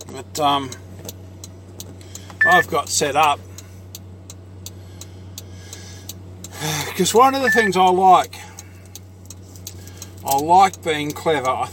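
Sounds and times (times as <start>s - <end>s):
small timer ticking: 0.2s - 11.7s
speech: 0.3s - 0.8s, 2.4s - 3.5s, 7.0s - 8.4s, 10.3s - 11.7s.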